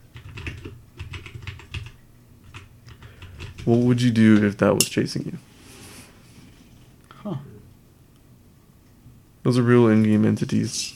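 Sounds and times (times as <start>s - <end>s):
rapid typing on a computer keyboard while entering a search: 0.1s - 3.7s
speech: 3.6s - 5.5s, 9.5s - 10.9s.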